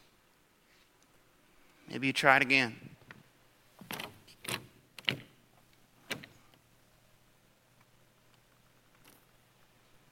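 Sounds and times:
speech: 1.9 - 2.9
locked door handle rattling: 3.8 - 5.4, 6.0 - 6.4.

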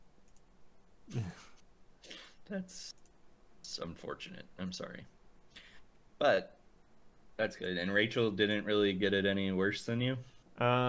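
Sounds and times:
person clearing throat: 1.1 - 1.6
person coughing: 1.1 - 2.3
speech: 2.5 - 3.0, 3.7 - 5.2, 6.2 - 6.6, 7.4 - 10.8.

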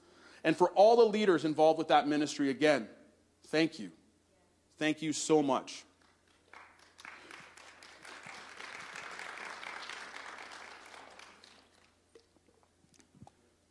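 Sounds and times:
speech: 0.4 - 4.0, 4.8 - 5.9
subdued polite audience applause: 6.0 - 12.1.

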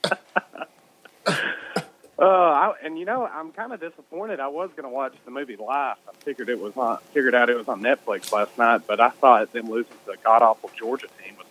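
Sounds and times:
person coughing after inhaling smoke: 0.0 - 0.4, 1.2 - 2.0
speech: 2.2 - 11.4.

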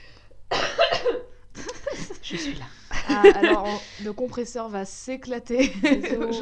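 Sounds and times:
harsh coughs turned away from the microphone: 0.5 - 2.7
laughter: 1.6 - 4.0, 5.6 - 6.4
speech: 2.3 - 6.4.

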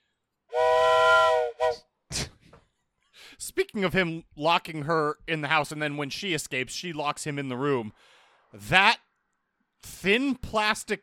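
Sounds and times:
steamy whistle blowing: 0.5 - 1.8
speech: 3.7 - 9.0, 9.8 - 11.0.

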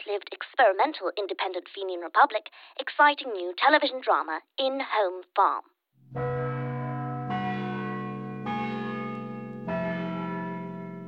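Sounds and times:
speech: 0.1 - 6.3
large cathedral church bells ringing the hour in Cavan: 6.0 - 11.0.

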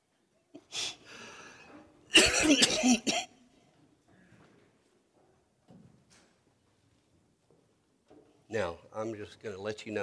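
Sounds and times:
person coughing harshly: 2.1 - 3.3
speech: 2.4 - 3.3, 8.6 - 10.0.

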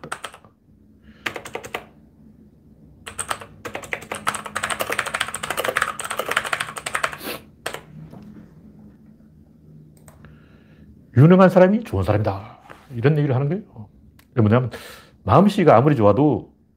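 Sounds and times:
typing a note on a computer keyboard: 0.0 - 0.5, 1.2 - 1.9, 3.0 - 7.9
speech: 11.2 - 16.5.

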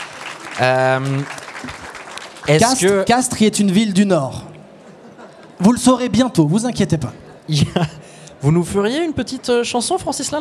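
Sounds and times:
live audience applause: 0.0 - 3.4
speech: 0.6 - 4.5, 5.6 - 10.3
laughter: 4.8 - 5.8, 7.0 - 8.0.

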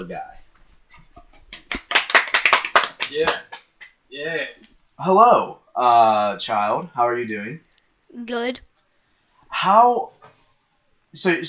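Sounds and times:
speech: 0.0 - 1.0, 3.1 - 3.5, 4.1 - 8.7, 9.5 - 10.2, 11.1 - 11.4
small group applauding: 1.5 - 4.0
voices among clapping: 1.6 - 4.0.

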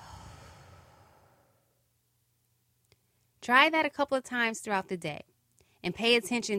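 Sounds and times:
slow deep breath inhaled and exhaled close to the microphone: 0.0 - 1.7
speech: 3.4 - 6.5.

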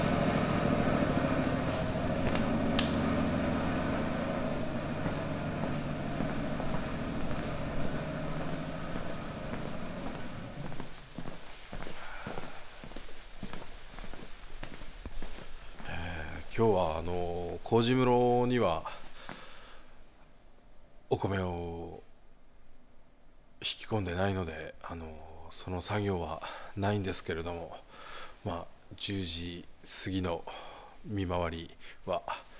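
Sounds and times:
pump transferring sake to a storage tank: 0.0 - 10.9
speech: 16.6 - 19.0, 21.1 - 22.0, 23.9 - 27.8, 28.4 - 32.5.

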